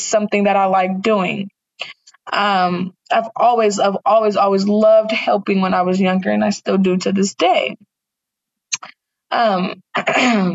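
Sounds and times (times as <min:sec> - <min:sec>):
speech: 0:00.1 - 0:07.9, 0:08.8 - 0:10.5
person coughing: 0:10.0 - 0:10.5.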